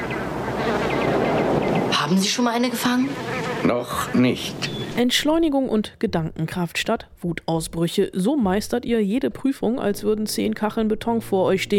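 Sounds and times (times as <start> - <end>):
fly buzzing: 0.5 - 5.0
speech: 2.1 - 11.7.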